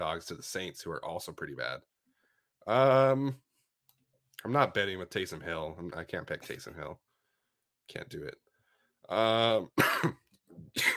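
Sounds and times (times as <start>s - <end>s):
speech: 0.0s - 1.9s, 2.6s - 3.5s, 4.4s - 7.0s, 7.9s - 8.4s, 9.1s - 10.9s
man coughing: 9.7s - 10.9s.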